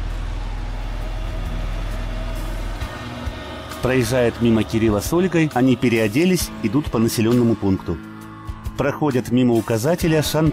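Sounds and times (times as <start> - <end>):
cargo truck engine droning along a road: 0.0 - 10.5
speech: 3.8 - 8.1, 8.8 - 10.5.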